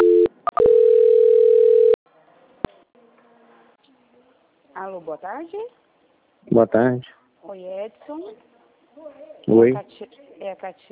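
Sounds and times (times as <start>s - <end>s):
telephone tones during a call transfer: 0.0s - 2.0s
speech: 5.0s - 5.8s, 6.4s - 10.8s.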